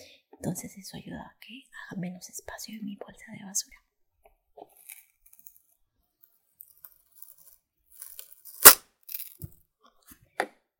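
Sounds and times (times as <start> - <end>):
speech: 0.4 - 3.9
Tetra Pak carton being opened and flattened: 6.6 - 9.6.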